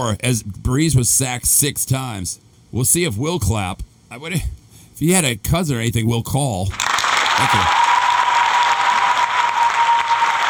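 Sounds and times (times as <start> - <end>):
speech: 0.0 - 7.8
crowd applause: 6.7 - 10.4.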